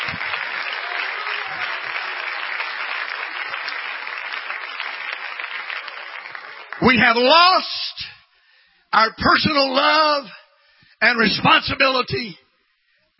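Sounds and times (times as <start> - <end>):
large church audience clapping: 0.0 - 7.6
speech: 6.8 - 7.8, 8.9 - 10.4, 11.0 - 12.4.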